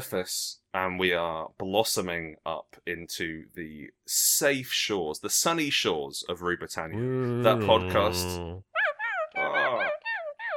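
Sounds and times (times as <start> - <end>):
speech: 0.0 - 8.7
dog barking and yelping: 8.7 - 10.5.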